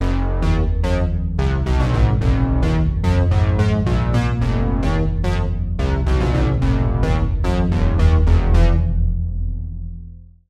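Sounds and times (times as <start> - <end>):
fuzzy circuit oscillator bass: 0.0 - 10.3.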